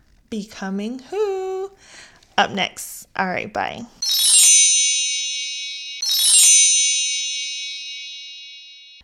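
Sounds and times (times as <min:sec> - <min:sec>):
speech: 0:00.3 - 0:04.0
bright shimmering bell chimes as segment transition jingle: 0:04.0 - 0:09.0.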